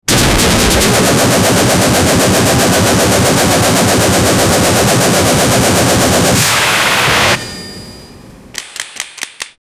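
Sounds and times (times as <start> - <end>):
AK 47 firing: 0.1 - 6.4.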